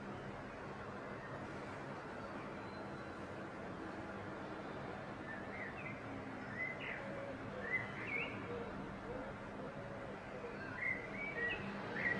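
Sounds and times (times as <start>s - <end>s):
steady background noise: 0.0s - 12.1s
perched common blackbird singing: 5.3s - 9.2s, 10.3s - 12.1s.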